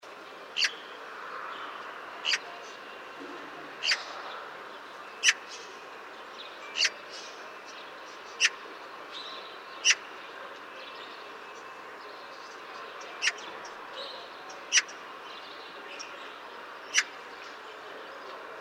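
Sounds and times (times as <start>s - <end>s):
Eurasian magpie Pica pica calling: 0.6s - 0.8s, 2.2s - 2.4s, 3.8s - 4.1s, 5.2s - 5.5s, 6.7s - 7.0s, 8.3s - 8.6s, 9.8s - 10.1s, 13.2s - 13.5s, 14.6s - 15.0s, 16.9s - 17.2s.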